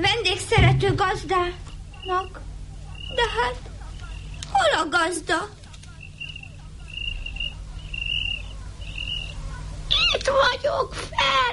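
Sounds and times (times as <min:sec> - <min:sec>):
low constant rumble: 0:00.0 - 0:11.5
speech: 0:00.5 - 0:02.5, 0:03.1 - 0:03.8, 0:04.6 - 0:05.6, 0:10.3 - 0:11.5
cricket on a roof beam chirping: 0:01.8 - 0:04.5, 0:05.9 - 0:10.1.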